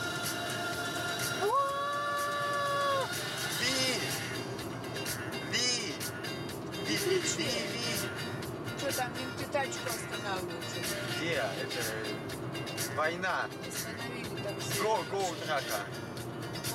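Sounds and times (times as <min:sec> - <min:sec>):
busy street traffic roar: 0:00.0 - 0:16.7
speech: 0:07.0 - 0:07.9, 0:08.9 - 0:16.0.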